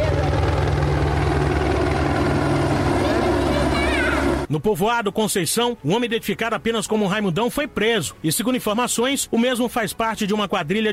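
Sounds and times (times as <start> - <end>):
helicopter rotor thump and engine roar overhead: 0.0 - 4.5
speech: 4.5 - 10.9.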